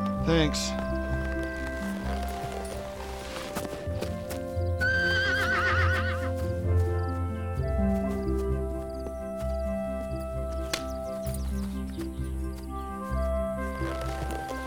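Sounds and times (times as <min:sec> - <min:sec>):
horse hooves clip-clopping: 0:00.0 - 0:14.6
speech: 0:00.2 - 0:00.9
stallion giving a loud wavering whinny: 0:04.8 - 0:06.4.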